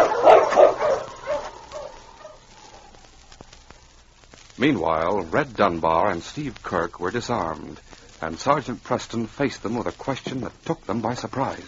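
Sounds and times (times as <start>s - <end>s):
sled dogs yipping and whining: 0.0s - 2.5s
sled dog team barking: 0.0s - 3.0s
speech: 4.6s - 11.6s.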